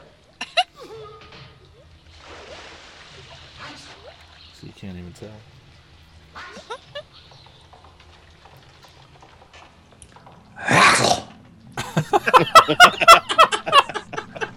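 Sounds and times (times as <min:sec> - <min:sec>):
water dripping and sloshing: 0:00.0 - 0:10.6
brief rushing surge of water: 0:01.9 - 0:06.3
speech: 0:04.8 - 0:05.6, 0:12.0 - 0:13.0
laughter: 0:11.8 - 0:14.5.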